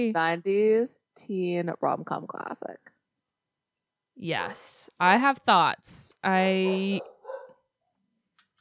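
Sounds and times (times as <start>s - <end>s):
speech: 0.1s - 2.9s, 4.2s - 7.1s
dog barking: 6.7s - 7.7s.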